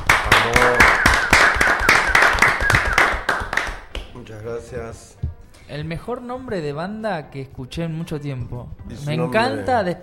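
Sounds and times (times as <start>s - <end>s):
applause welcoming a tango band: 0.0s - 4.2s
speech: 4.7s - 10.0s.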